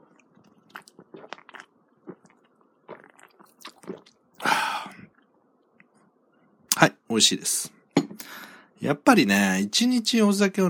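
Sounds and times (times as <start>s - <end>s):
crunchy chewing of a snack: 0.4s - 4.1s
speech: 6.8s - 7.8s, 8.8s - 10.6s.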